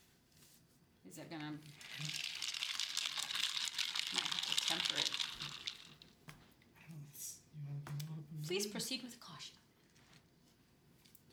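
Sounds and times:
speech: 1.1 - 2.3, 4.1 - 5.6, 8.5 - 9.7
water pouring into older glass pour-over coffee maker: 1.7 - 6.0.

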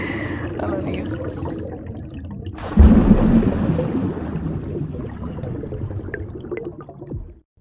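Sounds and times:
churning, bubbling water with small droplet spatters: 0.0 - 7.5
speech: 0.9 - 2.0
heavy water splash: 2.6 - 7.3.

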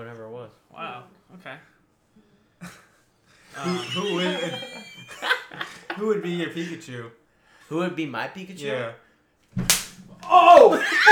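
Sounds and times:
laughter: 3.5 - 6.3
speech: 6.1 - 9.6
slap to the face: 9.6 - 11.0.

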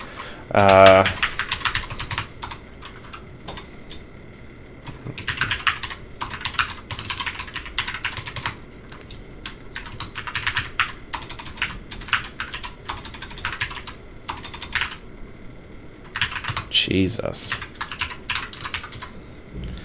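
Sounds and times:
speech: 0.5 - 1.2, 17.0 - 17.7
typing on a computer keyboard: 0.6 - 4.0, 4.8 - 15.0, 16.1 - 16.7, 17.5 - 19.1.

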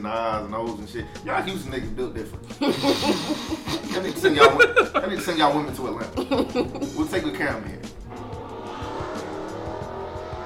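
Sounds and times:
speech: 0.0 - 8.0
laughter: 2.6 - 7.4
car engine revving outside: 7.0 - 10.4.

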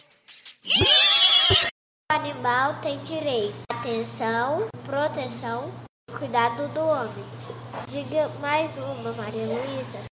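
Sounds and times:
child imitating a horse's neigh in a class game: 0.7 - 1.7
speech: 2.4 - 10.1.

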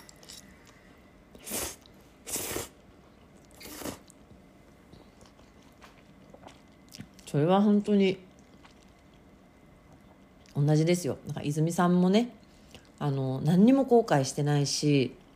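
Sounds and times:
person chewing a mouthful of pasta: 0.0 - 4.3, 4.9 - 7.3, 8.3 - 10.6
speech: 7.3 - 8.2, 10.6 - 12.4, 13.0 - 15.2.

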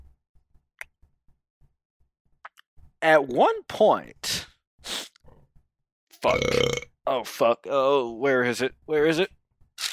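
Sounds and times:
speech: 3.0 - 4.4, 6.2 - 9.4
loud drawn-out human burp: 6.2 - 6.9.

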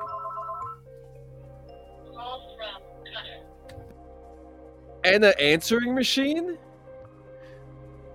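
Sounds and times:
landline phone ringing with electronic trills: 0.0 - 0.8
speech: 5.1 - 6.6.

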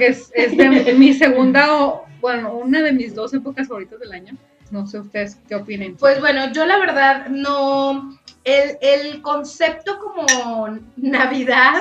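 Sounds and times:
speech: 0.0 - 11.7
laughter: 0.3 - 1.4
glasses of red wine clinking in a toast: 10.3 - 10.6.

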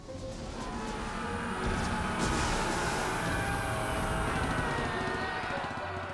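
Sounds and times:
Japanese Zero fighter planes attacking over a military base: 0.4 - 6.1.

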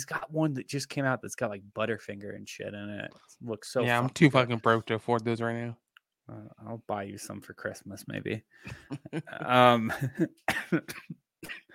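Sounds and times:
speech: 0.0 - 11.6
laughter: 8.7 - 10.4
person coughing: 10.5 - 11.7.

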